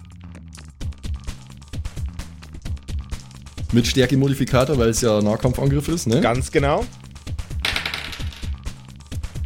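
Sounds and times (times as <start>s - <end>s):
speech: 3.7s - 7.0s
dice rolling across a hard tabletop: 7.6s - 8.7s.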